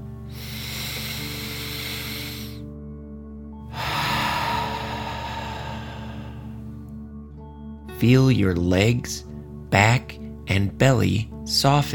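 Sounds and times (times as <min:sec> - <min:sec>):
deep breathing in and out through the mouth in a relaxation exercise: 0:00.0 - 0:02.9, 0:03.5 - 0:07.0
speech: 0:08.0 - 0:11.9.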